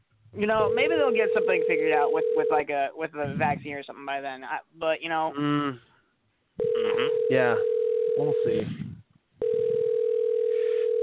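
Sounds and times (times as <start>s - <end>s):
speech: 0.4s - 5.9s, 6.6s - 8.9s
electronic telephone ring tone over the line of an unanswered call: 0.6s - 2.7s, 6.6s - 8.6s, 9.4s - 11.0s.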